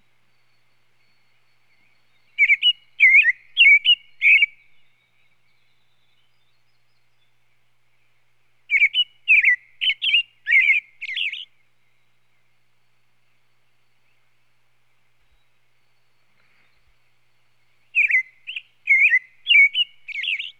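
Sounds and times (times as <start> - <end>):
American robin song: 0.3 - 7.3, 8.7 - 12.3, 17.9 - 20.5.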